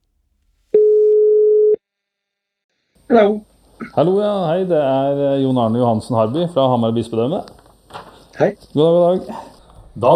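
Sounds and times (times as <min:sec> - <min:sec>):
telephone ringing tone while placing a call: 0:00.8 - 0:01.8
speech: 0:03.1 - 0:07.6, 0:08.4 - 0:10.1.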